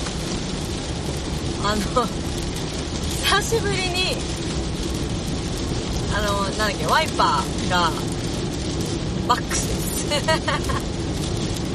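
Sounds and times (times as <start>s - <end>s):
heavy rain pouring onto a car during a drive: 0.0s - 11.7s
person's voice: 1.6s - 2.1s, 6.1s - 8.0s, 9.3s - 10.8s
speech: 1.6s - 2.2s, 3.2s - 4.5s, 6.1s - 8.2s, 9.3s - 11.0s.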